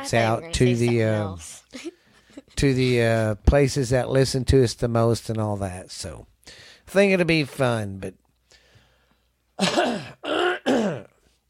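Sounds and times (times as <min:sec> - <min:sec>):
speech: 0:00.0 - 0:02.0, 0:02.6 - 0:08.2, 0:09.6 - 0:10.2
person clearing throat: 0:09.6 - 0:11.2.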